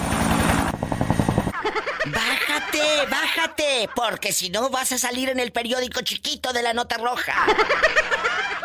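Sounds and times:
dense helicopter engine roar: 0:00.0 - 0:01.5
helicopter rotor chopping: 0:00.0 - 0:01.7
laughter: 0:01.5 - 0:04.4, 0:07.2 - 0:08.6
speech: 0:01.8 - 0:08.6.

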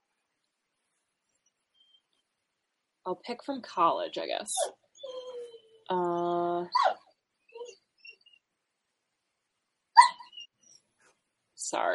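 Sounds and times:
speech: 0:03.1 - 0:04.8, 0:05.9 - 0:07.0, 0:11.7 - 0:11.9
dog whining for attention: 0:04.6 - 0:05.9, 0:06.7 - 0:08.4, 0:10.0 - 0:10.8
dog yipping and snuffling: 0:06.7 - 0:08.4, 0:10.0 - 0:10.8.

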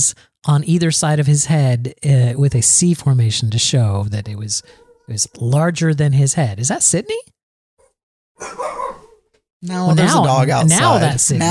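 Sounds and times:
speech: 0:00.0 - 0:07.4, 0:08.4 - 0:09.0, 0:09.6 - 0:11.5
dog barking: 0:07.8 - 0:09.2.

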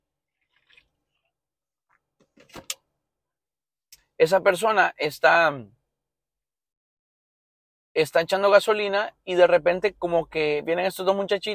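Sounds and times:
person sipping and gulping water: 0:00.3 - 0:01.4
speech: 0:04.2 - 0:05.8, 0:08.0 - 0:11.5.

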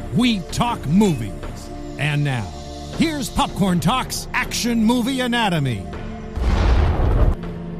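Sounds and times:
speech: 0:00.1 - 0:06.0
explosion sound effect: 0:06.4 - 0:07.4
sharp impact: 0:06.4 - 0:07.4.

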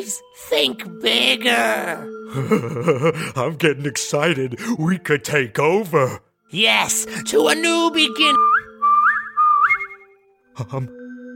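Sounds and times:
speech: 0:00.0 - 0:08.6, 0:10.6 - 0:11.0
brief low vocal sound: 0:02.1 - 0:03.4
person whistling rising phrases and warbling trills: 0:08.1 - 0:10.2.

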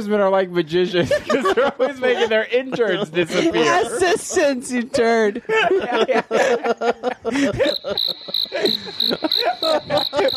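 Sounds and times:
speech: 0:00.0 - 0:10.3
laughter: 0:00.8 - 0:10.3
cricket chirping: 0:07.6 - 0:10.3.

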